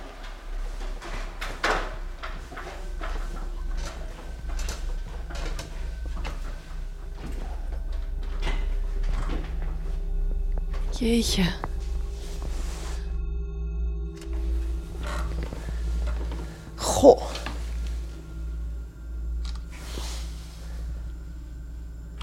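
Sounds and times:
folding ladder unfolding: 0.0s - 10.0s, 14.2s - 18.2s
ceiling hatch above a bed swinging open: 0.0s - 10.9s, 14.1s - 22.2s
steady low hum: 0.0s - 22.2s
speech: 11.0s - 11.7s.

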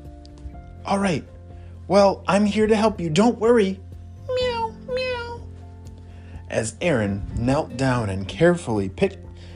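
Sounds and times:
speech: 0.9s - 3.8s, 6.6s - 9.2s
cat meowing: 4.2s - 5.5s.

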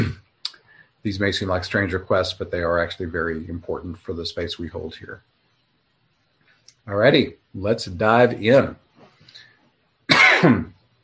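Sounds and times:
speech: 1.0s - 5.3s, 6.9s - 8.8s, 10.4s - 10.7s
person with a lingering cough coughing during a guided meditation session: 10.1s - 10.8s.

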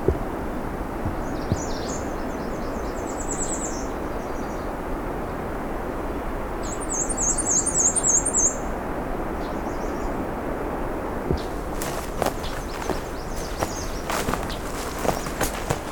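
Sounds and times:
steady low background noise: 0.0s - 15.9s
Black-and-white Warbler song along a road allowance by national park lands: 0.4s - 5.4s, 6.6s - 8.8s, 9.4s - 10.2s, 11.3s - 15.9s.

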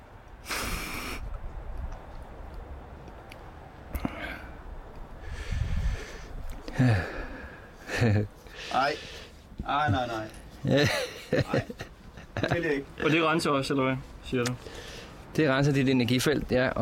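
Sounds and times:
sharp snorts: 0.4s - 1.3s
snuff tobacco blown into the nose: 0.4s - 1.3s
gasping throaty breaths: 4.0s - 9.4s
speech: 6.8s - 7.2s, 8.0s - 16.7s
laughter: 7.8s - 8.3s, 10.6s - 12.8s.

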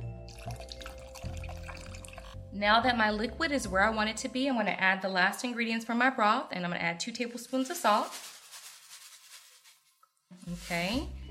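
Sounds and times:
cold tap water pouring into a pot of potatoes: 0.2s - 2.4s
speech: 2.6s - 8.3s, 10.5s - 11.2s.

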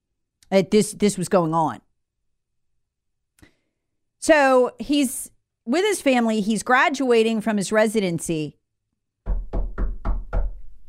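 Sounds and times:
speech: 0.5s - 1.8s, 4.2s - 8.6s
knocking on a door: 9.2s - 10.8s.

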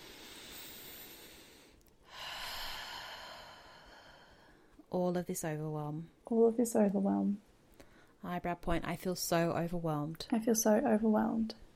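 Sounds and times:
gentle breath in during a guided tapping relaxation exercise: 0.0s - 4.8s
faint airy hiss: 0.0s - 9.5s
speech: 4.9s - 7.5s, 8.2s - 11.6s.

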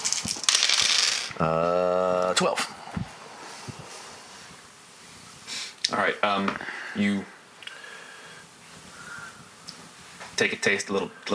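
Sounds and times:
dice clattering and rattling across a hard table: 0.0s - 1.4s
speech: 1.4s - 1.7s, 2.4s - 2.7s, 6.4s - 7.3s, 10.4s - 11.3s.

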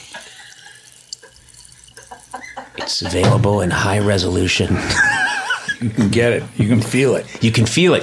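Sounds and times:
sparkling water poured into a glass: 0.0s - 2.6s
speech: 2.9s - 5.2s, 5.8s - 8.0s
laughter: 4.6s - 6.0s.

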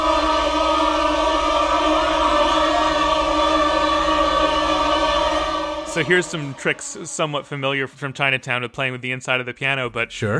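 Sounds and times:
low chorus of many voices singing with hands fluttering over mouths: 0.0s - 7.9s
speech: 6.0s - 10.3s.

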